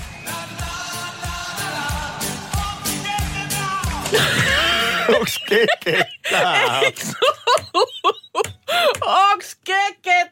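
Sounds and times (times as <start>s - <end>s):
chorus chanting na na na: 0.0s - 5.1s
steady punchy drum beat with crisp snare hits: 0.0s - 5.3s
upbeat pop music: 0.0s - 9.2s
laughter: 4.0s - 8.9s
speech: 5.1s - 7.9s.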